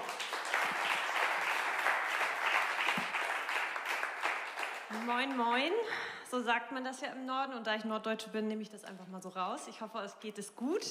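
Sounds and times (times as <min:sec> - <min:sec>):
sizeable crowd applauding: 0:00.0 - 0:05.6
speech: 0:05.0 - 0:10.8.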